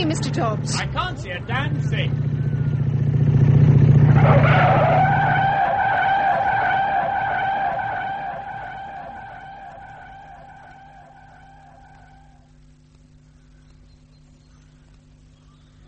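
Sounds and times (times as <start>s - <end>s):
speech: 0.0s - 2.3s
motorbike engine roaring: 0.0s - 13.2s
high tyre screech of a skidding motorbike: 4.0s - 12.4s.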